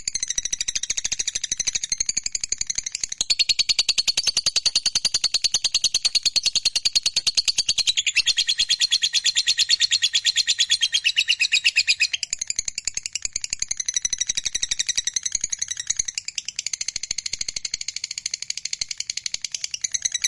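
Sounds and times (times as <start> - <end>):
fighter-type lovebird singing energetic chattering trill: 2.6 - 12.6.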